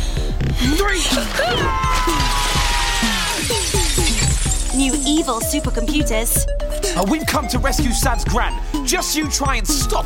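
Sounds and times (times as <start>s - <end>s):
speech: 0.6s - 2.4s, 4.8s - 10.0s
glass shattering as a battle dress crashes through it: 1.2s - 5.7s
tinkling, sliding glass shards: 2.2s - 5.7s.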